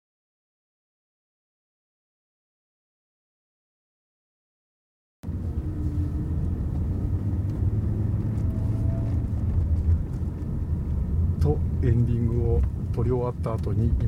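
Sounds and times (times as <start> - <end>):
car rolling at low speed through an indoor parking garage at a home improvement store: 5.2 - 14.0
speech: 11.5 - 14.0.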